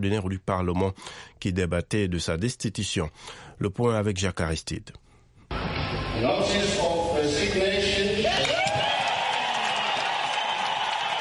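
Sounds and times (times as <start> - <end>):
speech: 0.0 - 5.0, 5.9 - 7.7
large crowd cheering and shouting in an echoing parliament chamber: 8.1 - 11.1
sustained applause in parliament chamber: 8.3 - 11.1.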